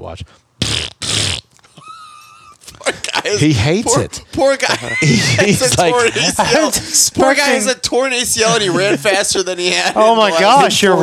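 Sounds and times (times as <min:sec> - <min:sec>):
speech: 0:00.0 - 0:00.9, 0:03.3 - 0:11.0
person blowing a wet raspberry imitating a fart: 0:00.6 - 0:01.6
laughter: 0:01.6 - 0:11.0.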